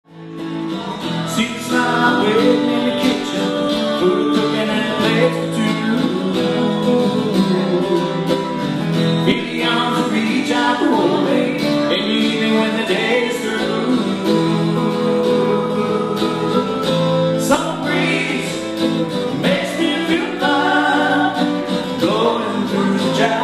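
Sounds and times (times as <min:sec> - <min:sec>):
acoustic duo playing: 0:00.1 - 0:23.4.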